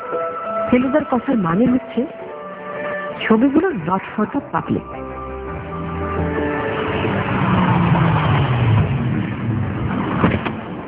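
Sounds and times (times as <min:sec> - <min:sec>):
speech: 0:00.7 - 0:02.2, 0:03.2 - 0:05.0
low tone sliding downward: 0:04.8 - 0:10.8
car engine rumbling as car drives up and parks in front of a cemetery: 0:05.0 - 0:10.8.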